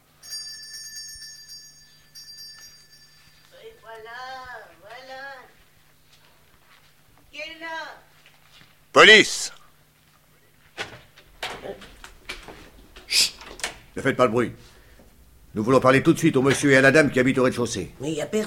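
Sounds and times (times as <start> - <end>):
electric doorbell ringing in stuttering bursts: 0.0 - 4.3
speech: 9.0 - 9.6, 14.0 - 14.7, 15.6 - 18.4.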